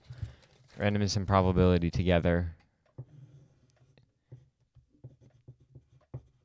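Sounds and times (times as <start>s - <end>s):
speech: 0.8s - 2.6s
pen writing on a diagram: 3.0s - 6.4s.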